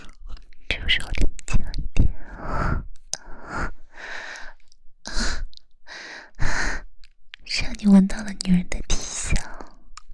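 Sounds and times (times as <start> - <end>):
speech: 0.9 - 1.2, 7.8 - 8.7
rapid agitated gasping breaths: 2.0 - 6.9.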